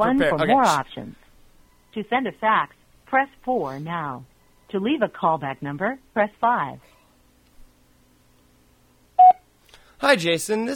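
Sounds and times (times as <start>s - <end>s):
speech: 0.0s - 1.2s, 2.0s - 6.9s, 10.0s - 10.7s
voicemail answering machine recording tone beep: 9.2s - 9.4s.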